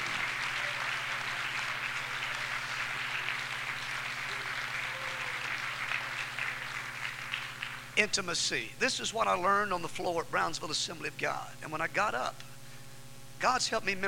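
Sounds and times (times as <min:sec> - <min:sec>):
audience clapping in a large room: 0:00.0 - 0:08.0
speech: 0:08.0 - 0:12.5, 0:13.4 - 0:14.0.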